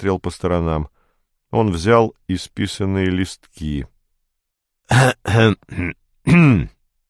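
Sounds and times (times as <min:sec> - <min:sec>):
speech: 0:00.0 - 0:03.9, 0:04.9 - 0:06.8
man clearing his throat in gruff bursts: 0:04.9 - 0:06.8.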